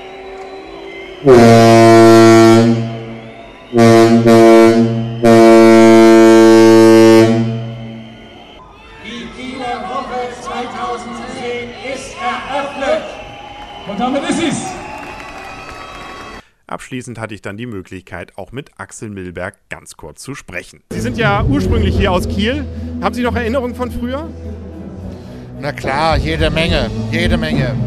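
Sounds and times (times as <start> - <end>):
speech: 1.2 - 1.6, 17.0 - 24.6, 25.6 - 27.8
ship's typhon horn blowing to cast off: 1.2 - 8.6.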